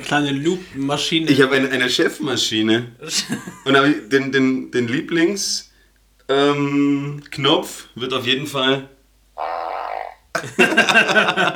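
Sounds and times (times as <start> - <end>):
speech: 0.1 - 5.7, 6.3 - 9.5, 10.4 - 11.5
laughter: 3.0 - 4.0, 10.4 - 11.5
fart sound effect from a soundboard: 9.4 - 10.3.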